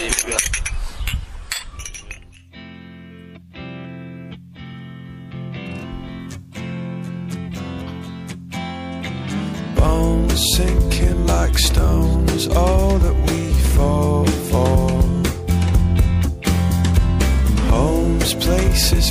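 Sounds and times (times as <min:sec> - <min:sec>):
glasses clinking in a toast: 0:00.0 - 0:02.6
music: 0:02.5 - 0:19.0.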